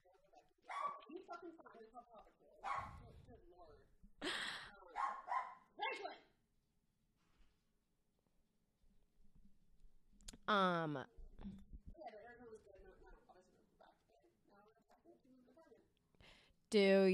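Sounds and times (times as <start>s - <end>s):
several dogs barking and yipping: 0.7s - 1.1s, 2.6s - 2.9s, 5.0s - 5.6s
speech: 10.5s - 11.7s, 16.7s - 17.1s.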